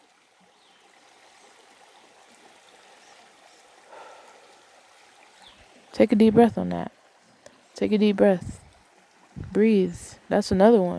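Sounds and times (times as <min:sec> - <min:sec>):
river flowing gently: 0:00.0 - 0:10.9
speech: 0:06.0 - 0:07.0, 0:07.8 - 0:08.6, 0:09.5 - 0:10.9.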